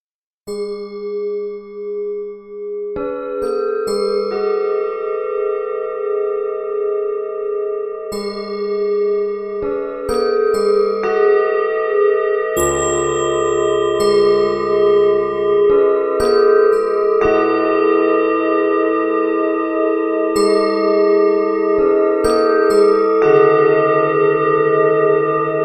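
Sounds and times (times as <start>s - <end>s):
piano: 2.8s - 25.6s
Tibetan bowls ringing: 12.6s - 18.0s
bells: 12.6s - 25.6s.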